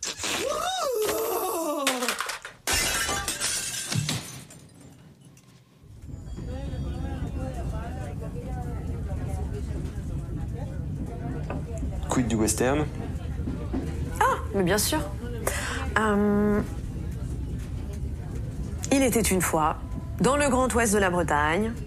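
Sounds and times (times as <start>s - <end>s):
gasping and groaning vocal sounds: 0.0s - 2.2s
computer smashed with harsh shattering crash: 1.9s - 5.0s
steady low rumble: 5.8s - 21.8s
speech: 12.3s - 13.0s, 14.6s - 15.2s, 16.0s - 16.8s, 19.0s - 21.8s.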